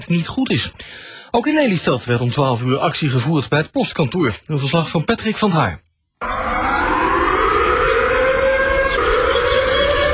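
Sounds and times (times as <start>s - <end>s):
speech: 0.0s - 5.9s
civil defense warning siren wailing in Lelystad Netherlands: 6.2s - 10.1s.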